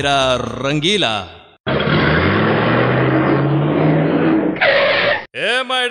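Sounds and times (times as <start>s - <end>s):
speech: 0.0s - 1.4s, 5.4s - 5.8s
car engine revving as it accelerates: 1.7s - 5.0s.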